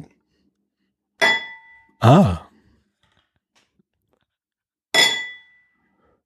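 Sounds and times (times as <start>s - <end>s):
speech: 2.0s - 2.4s
cup tapped against a ceramic soup bowl: 5.0s - 5.6s.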